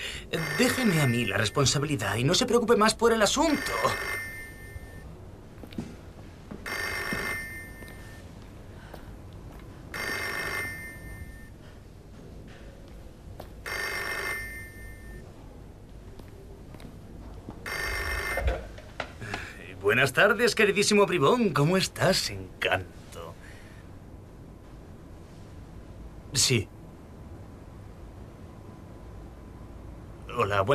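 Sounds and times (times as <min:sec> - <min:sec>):
telephone ringing with bell-like trilling: 0:00.3 - 0:01.8, 0:03.2 - 0:05.0, 0:06.6 - 0:08.3, 0:09.9 - 0:11.6, 0:13.6 - 0:15.2, 0:17.7 - 0:18.8
speech: 0:00.3 - 0:04.3, 0:20.1 - 0:23.0, 0:26.4 - 0:26.8, 0:30.4 - 0:30.7.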